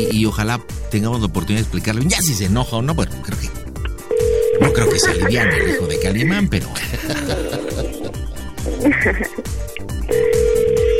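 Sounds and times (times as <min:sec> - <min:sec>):
speech: 0:00.0 - 0:03.6, 0:04.6 - 0:08.2, 0:08.8 - 0:10.3
ringback tone of an outgoing phone call: 0:04.1 - 0:06.3, 0:10.1 - 0:10.9
laughter: 0:06.6 - 0:09.5.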